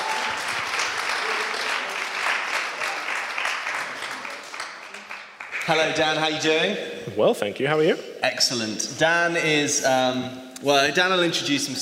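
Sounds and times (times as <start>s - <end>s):
audience applause welcoming a guest: 0.0s - 6.0s
speech: 5.7s - 11.8s.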